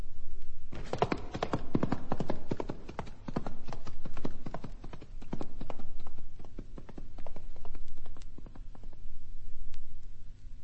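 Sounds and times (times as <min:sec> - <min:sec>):
horse hooves clip-clopping: 0:00.7 - 0:09.2.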